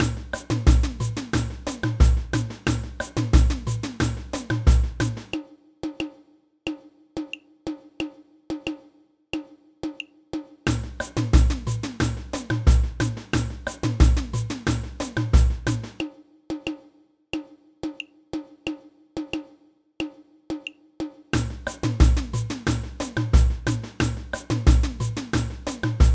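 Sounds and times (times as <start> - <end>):
samba band playing samba: 0.0 - 5.4, 10.7 - 16.0, 21.4 - 26.1
repinique drum in a samba band: 0.0 - 6.2, 10.4 - 16.1, 17.4 - 26.1.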